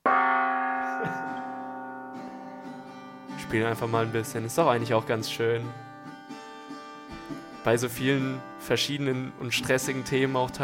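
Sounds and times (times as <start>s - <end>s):
single gong strike with bright metallic tone: 0.0s - 4.8s
speech: 3.5s - 5.9s, 7.6s - 10.6s.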